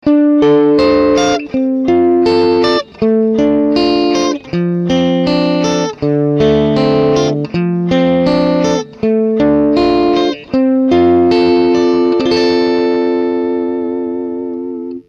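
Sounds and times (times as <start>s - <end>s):
funk music: 0.0s - 15.0s.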